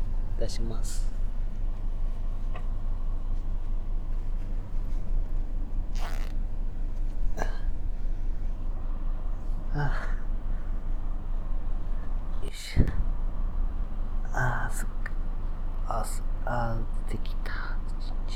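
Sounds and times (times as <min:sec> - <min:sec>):
low rumble of outdoor traffic: 0:00.0 - 0:18.3
speech: 0:00.4 - 0:01.2
zipper being pulled in rasping strokes: 0:04.6 - 0:07.1.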